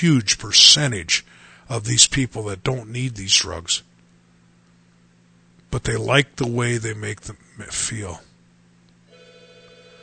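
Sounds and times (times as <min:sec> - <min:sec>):
speech: 0:00.0 - 0:03.9, 0:05.7 - 0:08.3
low hum: 0:00.0 - 0:10.0
telephone ringer with electronic tone: 0:09.1 - 0:10.0.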